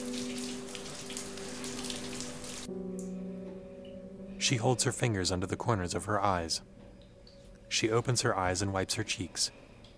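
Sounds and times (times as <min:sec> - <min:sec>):
shower water running from a showerhead onto a woman's back: 0:00.0 - 0:02.7
speech: 0:04.4 - 0:06.8, 0:07.7 - 0:09.7.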